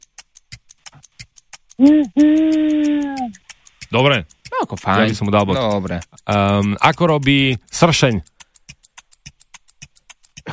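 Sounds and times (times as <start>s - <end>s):
sharp evenly spaced clicks: 0.0s - 10.5s
person imitating owl hoots: 1.7s - 3.4s
speech: 1.8s - 8.3s.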